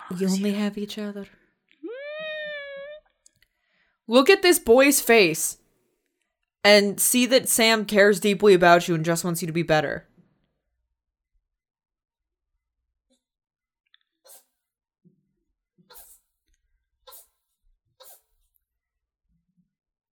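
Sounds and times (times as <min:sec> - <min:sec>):
speech: 0:00.1 - 0:01.4, 0:04.1 - 0:05.6, 0:06.6 - 0:10.1
cat sneezing: 0:15.9 - 0:16.2, 0:17.1 - 0:17.4, 0:18.0 - 0:18.4
cat snuffling: 0:15.9 - 0:16.2, 0:17.1 - 0:17.4, 0:18.0 - 0:18.4.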